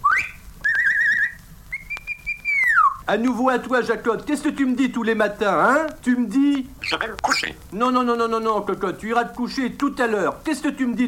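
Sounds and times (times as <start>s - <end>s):
person whistling as if calling a dog: 0.0s - 3.0s
speech: 3.1s - 11.0s.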